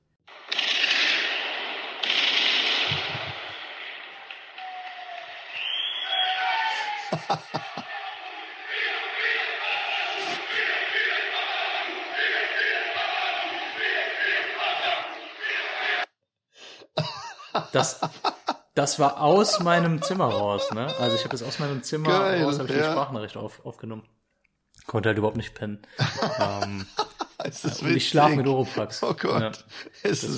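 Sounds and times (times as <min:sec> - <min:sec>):
firecrackers going off outside at night: 0:00.3 - 0:05.1
faint whistling streak before firecracker bursts: 0:05.4 - 0:06.5
laughter: 0:06.6 - 0:15.3, 0:16.9 - 0:23.2, 0:25.9 - 0:30.3
speech: 0:07.3 - 0:07.6, 0:17.7 - 0:18.2, 0:18.8 - 0:24.2, 0:24.9 - 0:30.3
large crowd singing and chanting outside: 0:07.8 - 0:16.1.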